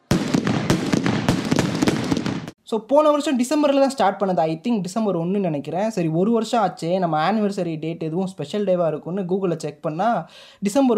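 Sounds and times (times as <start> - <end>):
dense string of firecrackers bursting: 0.0 - 2.6
speech: 2.7 - 10.9.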